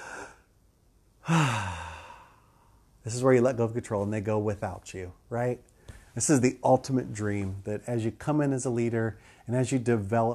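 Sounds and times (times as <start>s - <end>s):
deep breath with loud voiced sighing exhale: 0.0s - 0.5s, 1.2s - 2.8s
speech: 1.3s - 1.8s, 3.0s - 10.3s.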